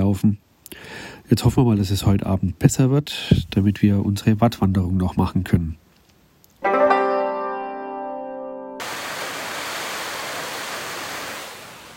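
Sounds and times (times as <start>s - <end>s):
speech: 0.1s - 5.8s
sustained musical tone: 6.6s - 8.8s
heavy pouring rain outside: 8.8s - 11.9s.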